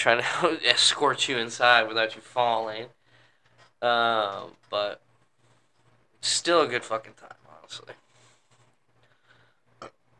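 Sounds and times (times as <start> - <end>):
speech: 0.0 - 3.0, 3.8 - 5.1, 6.2 - 8.0
faint low hum: 0.0 - 10.1
short burp: 9.8 - 10.1.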